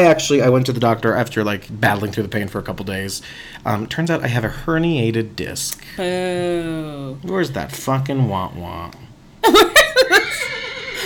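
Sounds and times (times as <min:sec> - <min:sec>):
speech: 0:00.0 - 0:10.2
laughter: 0:09.4 - 0:11.0
horse whinnying: 0:10.2 - 0:11.0.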